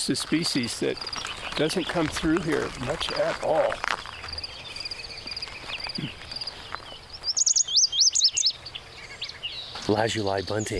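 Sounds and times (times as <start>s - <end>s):
speech: 0.0s - 3.9s, 9.9s - 10.7s
other birds: 0.0s - 10.7s
hum of insects: 0.1s - 10.7s
wide-eyed vireo singing short slurred whistled phrases: 4.4s - 9.8s.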